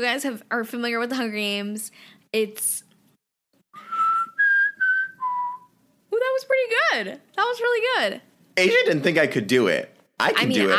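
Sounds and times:
speech: 0.0 - 2.9, 6.4 - 10.7
person whistling a short four-note tune: 3.8 - 5.7.

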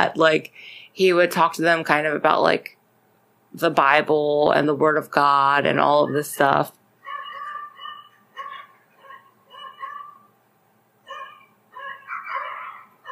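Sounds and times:
speech: 0.0 - 2.8, 3.5 - 6.8
small dog barking outdoors with high-pitched yaps: 7.0 - 10.3, 11.1 - 13.0.

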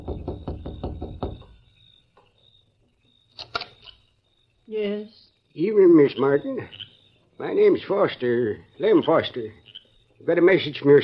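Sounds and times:
man knocking on the wooden door of a house: 0.0 - 1.6
thumps: 0.0 - 1.6
speech: 4.7 - 9.6, 10.2 - 11.0.

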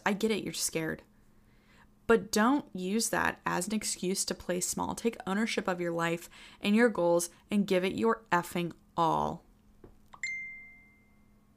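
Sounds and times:
speech: 0.1 - 1.1, 2.1 - 9.4
bell-like phone text message notification chime: 10.2 - 11.4.

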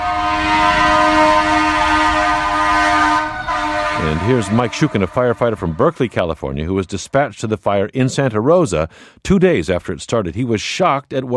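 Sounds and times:
fire truck horn blaring in Santa Rosa streets: 0.0 - 6.3
speech: 4.2 - 11.3.

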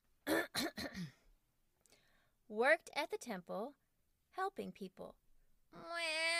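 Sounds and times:
person clearing throat: 0.2 - 1.2
speech: 2.5 - 3.8, 4.4 - 6.3.

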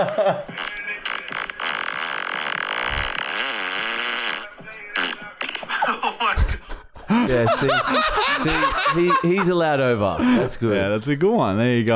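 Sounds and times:
speech: 0.0 - 0.7, 7.1 - 11.9
laughter: 0.0 - 0.8, 5.6 - 10.7
long loud raspy fart: 0.5 - 5.6.

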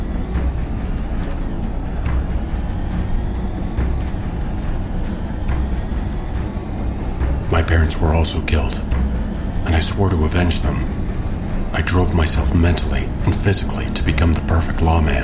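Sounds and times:
car engine and road noise while driving: 0.0 - 15.2
faint high whines: 0.0 - 15.2
speech: 7.9 - 8.9, 9.6 - 11.0, 11.8 - 15.2.

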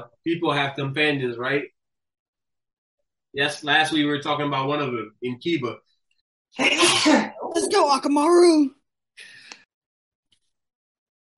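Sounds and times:
speech: 0.0 - 1.8, 3.3 - 5.9, 6.5 - 9.3
quick breathy stifled sneeze: 6.6 - 7.4.

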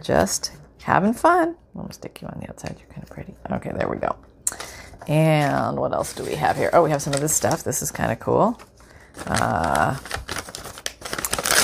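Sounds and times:
speech: 0.0 - 10.2
paper crinkling: 4.5 - 11.6
coffee-dyed paper tearing: 9.2 - 11.6.

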